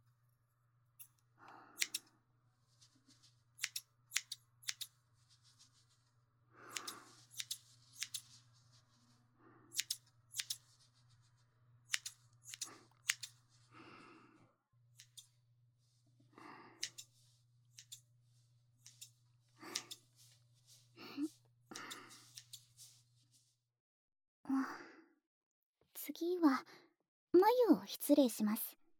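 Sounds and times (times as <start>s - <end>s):
scissors snipping while trimming sideburns: 1.8s - 2.1s, 3.6s - 5.0s, 6.7s - 8.4s, 9.7s - 10.7s, 11.9s - 13.4s, 15.0s - 15.4s, 16.8s - 18.1s, 18.8s - 20.3s, 21.7s - 22.7s
soft brushing sounds: 2.5s - 13.8s, 15.0s - 23.6s
speech: 26.1s - 28.8s.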